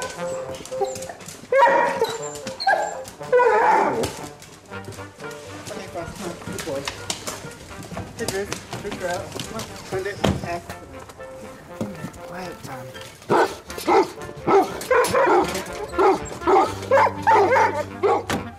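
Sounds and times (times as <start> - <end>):
Weimaraner dogs barking: 0.0 - 4.4, 13.2 - 18.5
speech: 9.1 - 10.7.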